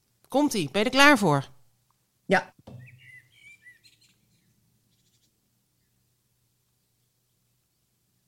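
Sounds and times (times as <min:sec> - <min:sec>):
speech: 0:00.3 - 0:01.5, 0:02.3 - 0:02.6
common blackbird singing: 0:02.7 - 0:06.0.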